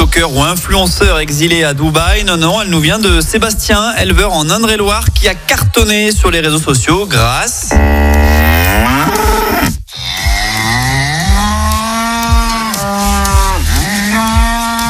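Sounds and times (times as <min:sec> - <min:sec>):
speech: 0:00.2 - 0:09.1
several cows mooing: 0:07.7 - 0:14.8.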